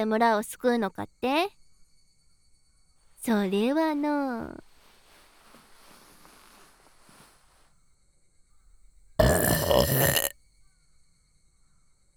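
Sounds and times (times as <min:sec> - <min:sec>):
speech: 0:00.0 - 0:01.6, 0:03.2 - 0:04.7, 0:09.2 - 0:10.3
faint hiss: 0:02.8 - 0:08.5
loud burp blown into an ear: 0:09.2 - 0:10.3.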